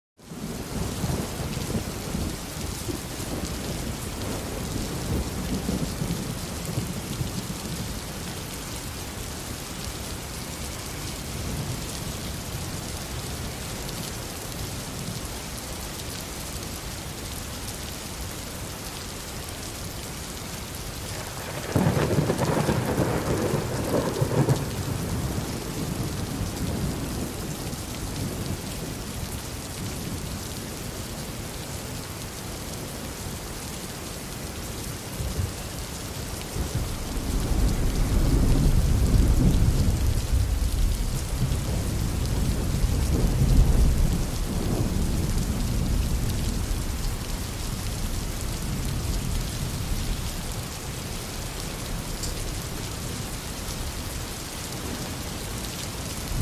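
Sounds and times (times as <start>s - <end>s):
heavy rain in urban thunderstorm: 0.2s - 56.3s
urban thunderstorm thunder: 21.2s - 26.3s, 36.6s - 47.0s.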